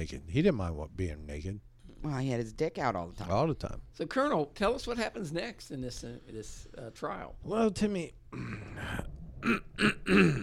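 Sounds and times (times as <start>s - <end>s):
speech: 0.0s - 10.4s
throat clearing: 8.3s - 10.4s.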